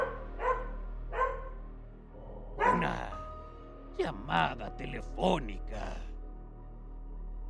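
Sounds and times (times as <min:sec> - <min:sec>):
dog barking: 0:00.0 - 0:01.6, 0:02.6 - 0:03.1
speech: 0:04.0 - 0:06.1.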